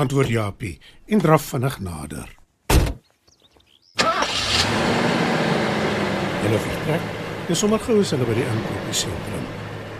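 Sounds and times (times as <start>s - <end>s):
speech: 0.0s - 2.4s, 6.4s - 9.6s
car door thudding shut: 2.7s - 3.0s
car engine cranking and catching into a steady idle rumble: 4.0s - 9.9s.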